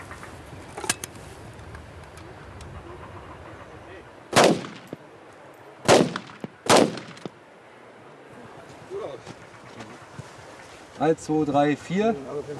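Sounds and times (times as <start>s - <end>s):
low noise: 0.0s - 12.5s
handgun shots at a military shooting exercise: 4.4s - 5.0s, 5.9s - 7.4s
speech: 11.0s - 12.5s.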